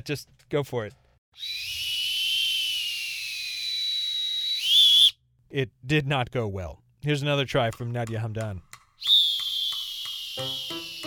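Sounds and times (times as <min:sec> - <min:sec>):
speech: 0:00.0 - 0:01.8, 0:05.5 - 0:08.7
long shrill lifeguard whistle blast: 0:01.4 - 0:05.2, 0:09.0 - 0:11.0.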